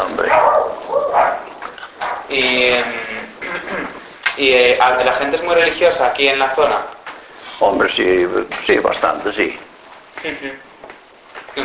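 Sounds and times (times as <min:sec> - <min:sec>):
dogs barking and yelping: 0:00.0 - 0:02.3
speech: 0:04.4 - 0:06.9, 0:07.6 - 0:09.6, 0:10.2 - 0:10.7.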